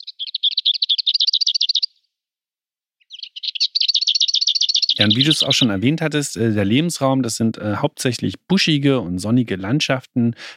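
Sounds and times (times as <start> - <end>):
lesser whitethroat singing a dry rapid rattle: 0.0 - 2.1, 3.0 - 5.8
speech: 5.0 - 10.5.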